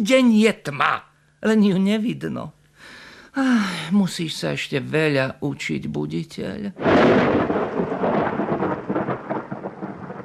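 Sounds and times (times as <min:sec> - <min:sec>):
speech: 0:00.0 - 0:07.4
continuous hiss of rain: 0:06.8 - 0:10.2
thunder rolling through a rainstorm: 0:06.8 - 0:10.2.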